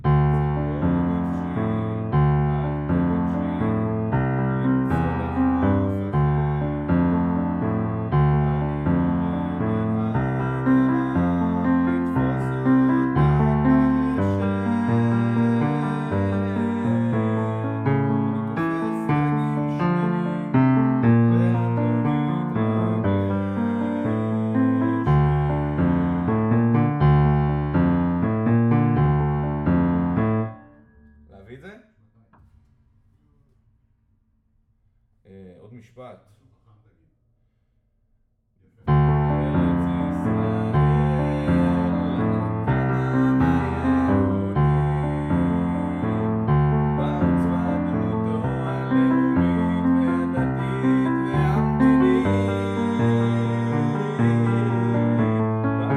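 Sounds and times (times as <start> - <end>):
piano: 0.0 - 31.5, 38.8 - 55.9.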